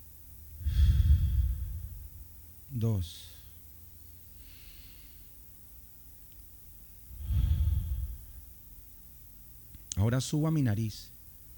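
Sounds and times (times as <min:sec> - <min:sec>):
soft breath taken during a meditation exercise: 0:00.5 - 0:02.5, 0:07.1 - 0:08.6
speech: 0:02.8 - 0:03.4, 0:10.0 - 0:11.2.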